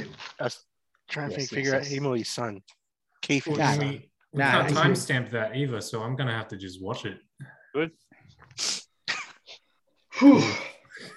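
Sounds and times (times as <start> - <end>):
speech: 0.4 - 8.8, 10.2 - 10.7
short breathy sniffs: 8.5 - 9.0.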